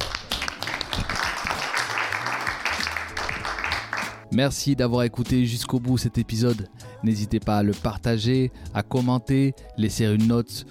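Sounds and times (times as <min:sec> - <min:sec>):
group of people applauding: 0:00.0 - 0:04.2
speech: 0:04.3 - 0:10.6.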